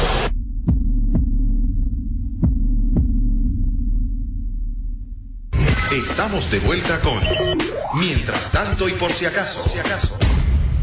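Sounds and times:
deep throbbing hum: 0:00.0 - 0:05.7
heartbeat sound effect lub-dub thumps: 0:00.3 - 0:05.4
speech: 0:05.9 - 0:10.3.

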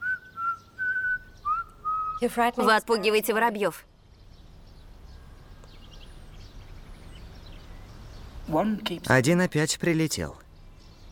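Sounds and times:
person whistling: 0:00.0 - 0:02.2
speech: 0:02.2 - 0:03.9, 0:08.5 - 0:10.4.

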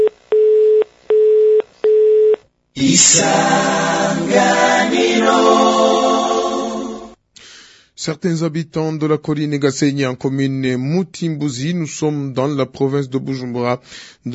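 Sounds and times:
telephone busy signal after a call is hung up: 0:00.0 - 0:02.4
speech: 0:02.8 - 0:06.0, 0:08.0 - 0:14.3
loud dense harmonic sound: 0:02.8 - 0:07.2.

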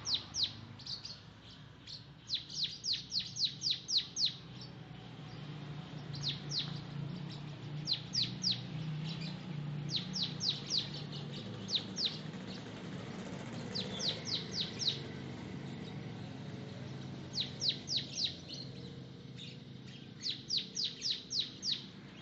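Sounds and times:
Oriental magpie-robin song of high falling whistled notes: 0:00.0 - 0:22.2.

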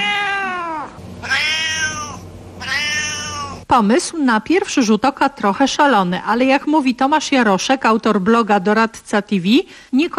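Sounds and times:
cat meowing: 0:00.0 - 0:03.6
speech: 0:03.7 - 0:10.1.

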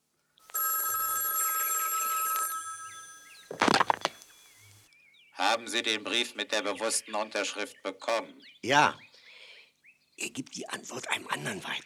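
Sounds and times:
old telephone bell ringing in an apartment: 0:00.5 - 0:03.7
speech: 0:05.6 - 0:09.1, 0:10.2 - 0:11.8.

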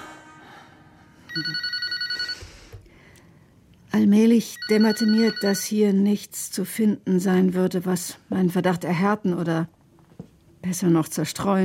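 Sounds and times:
telephone bell ringing: 0:01.3 - 0:02.7, 0:04.5 - 0:05.8
speech: 0:01.4 - 0:01.8, 0:03.9 - 0:09.8, 0:10.6 - 0:11.6.

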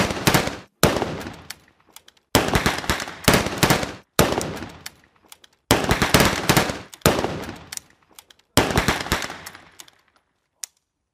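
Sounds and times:
firing squad gunfire at an execution in heavy rain: 0:00.0 - 0:01.5, 0:02.3 - 0:04.8, 0:05.7 - 0:07.7, 0:08.6 - 0:09.8.

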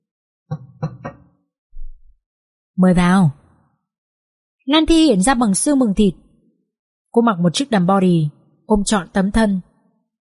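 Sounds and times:
soft hollow knocking on a door: 0:00.5 - 0:01.3
speech: 0:02.8 - 0:03.4, 0:04.7 - 0:06.2, 0:07.1 - 0:09.7.

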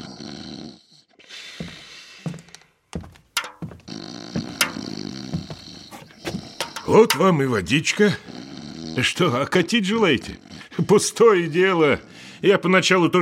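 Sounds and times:
man snoring while lying on the floor: 0:00.0 - 0:01.2, 0:03.9 - 0:07.0, 0:08.0 - 0:09.4
speech: 0:06.9 - 0:08.3, 0:09.0 - 0:13.1.

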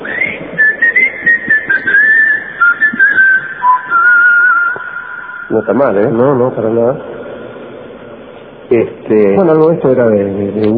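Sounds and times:
human whistle call used to summon a group of friends: 0:00.0 - 0:05.7
speech: 0:05.5 - 0:07.1, 0:08.7 - 0:10.7.

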